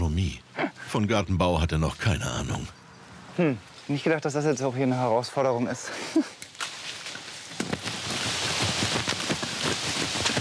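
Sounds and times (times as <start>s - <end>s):
speech: 0.9s - 2.8s, 3.4s - 6.4s
steady rain pattering on a surface: 7.6s - 10.4s.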